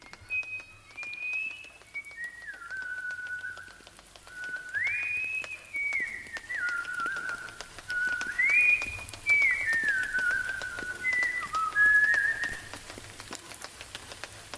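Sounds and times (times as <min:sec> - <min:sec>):
person whistling a slow gliding melody in front of their house: 0:00.0 - 0:12.8
faint scattered ticking: 0:00.0 - 0:14.5.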